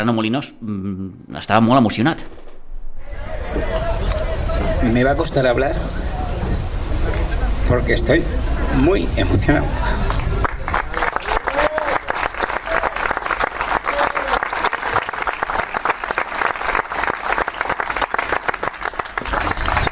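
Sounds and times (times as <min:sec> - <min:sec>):
speech: 0:00.0 - 0:02.5, 0:04.8 - 0:06.2, 0:07.7 - 0:10.0
faint voices and cheers: 0:03.0 - 0:07.6, 0:09.4 - 0:15.0
large audience applauding: 0:10.0 - 0:19.9.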